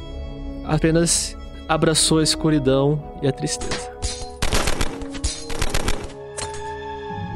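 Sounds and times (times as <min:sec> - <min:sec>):
speech: 0:00.7 - 0:04.2
machine-gun fire in rapid bursts of sharp clattering shots: 0:04.4 - 0:06.2.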